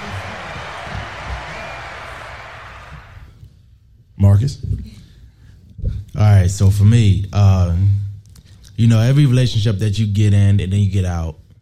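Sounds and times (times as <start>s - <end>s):
canned applause and cheering from a soundboard button: 0.0s - 3.3s
speech: 4.4s - 5.0s, 6.2s - 8.0s, 8.8s - 11.4s.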